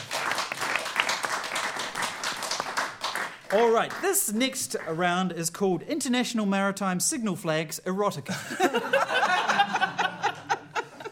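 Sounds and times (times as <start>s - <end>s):
small crowd applauding: 0.0s - 4.2s
speech: 3.5s - 9.8s
laughter: 8.3s - 11.1s.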